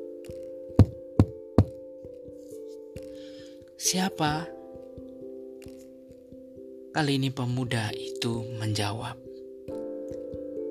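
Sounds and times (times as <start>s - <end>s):
soft steady musical drone: 0.0s - 10.7s
young man knocking on the door of a house: 0.8s - 1.8s
speech: 3.8s - 4.6s, 7.0s - 9.2s.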